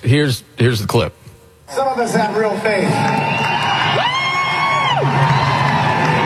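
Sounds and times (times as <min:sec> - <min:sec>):
speech: 0:00.0 - 0:04.1
big concert crowd roaring: 0:02.4 - 0:06.2
long drawn-out shout: 0:02.9 - 0:06.2.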